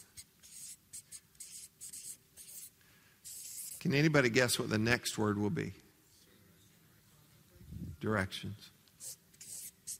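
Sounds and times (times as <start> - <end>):
marker scratching and squeaking on a board: 0.0 - 2.7, 3.3 - 3.8, 9.0 - 9.9
speech: 3.8 - 5.8, 8.1 - 8.8.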